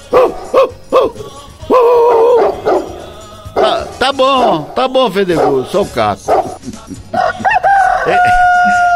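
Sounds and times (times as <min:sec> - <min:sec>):
rooster crowing: 0:00.5 - 0:03.0, 0:07.2 - 0:08.9
speech: 0:04.1 - 0:06.4
laughter: 0:06.4 - 0:07.8.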